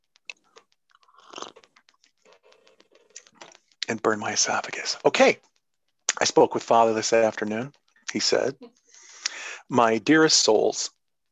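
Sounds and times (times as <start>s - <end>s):
wet mouth clicks: 0.1s - 3.8s
small swallowing sounds: 0.3s - 3.8s
noisy slurp of hot tea: 1.0s - 3.5s
speech: 3.9s - 5.5s, 6.2s - 8.8s, 9.7s - 11.0s.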